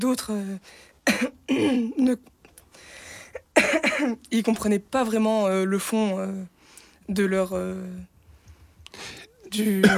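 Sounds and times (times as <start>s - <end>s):
speech: 0.0s - 2.9s, 3.6s - 6.5s, 7.1s - 8.1s, 8.9s - 9.9s
person coughing: 1.1s - 2.0s, 3.6s - 4.2s, 9.6s - 9.9s.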